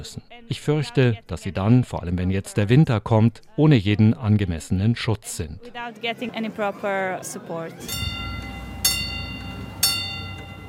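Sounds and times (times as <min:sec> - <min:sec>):
speech: 0:00.0 - 0:08.3
railway crossing bell clanging in Ključ Brdovečki: 0:07.8 - 0:10.6.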